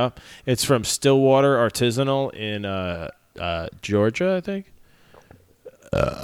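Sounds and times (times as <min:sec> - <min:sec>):
speech: 0:00.0 - 0:04.7, 0:05.9 - 0:06.2
person burping: 0:05.6 - 0:06.2.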